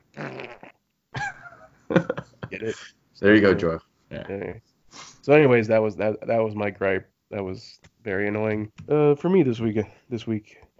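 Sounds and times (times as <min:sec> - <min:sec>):
loud fart noises: 0:00.0 - 0:00.8
speech: 0:01.9 - 0:10.6.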